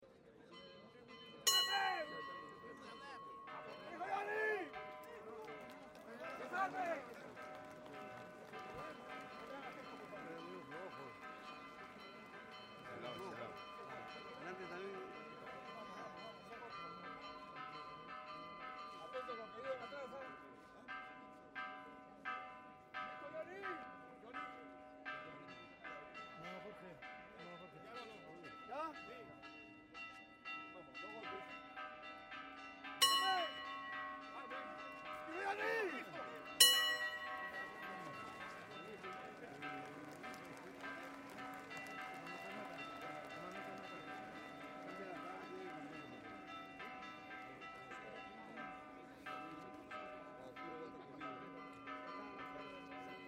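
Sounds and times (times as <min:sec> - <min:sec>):
various bells ringing at a procession: 0:00.3 - 0:53.2
applause at a procession: 0:03.8 - 0:16.2, 0:35.3 - 0:48.6.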